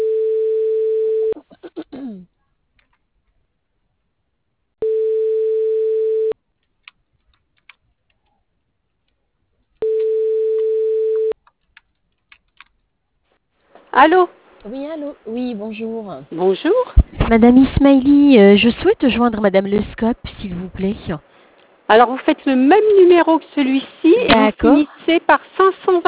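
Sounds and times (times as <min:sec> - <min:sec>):
telephone line tone bursts during a call transfer: 0:00.0 - 0:01.4, 0:04.8 - 0:06.4, 0:09.8 - 0:11.4
speech: 0:14.0 - 0:26.0.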